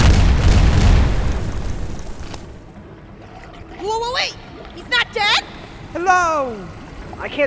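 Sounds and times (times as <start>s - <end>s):
loud deep explosion in a video game: 0.0s - 2.7s
speech: 6.1s - 7.4s.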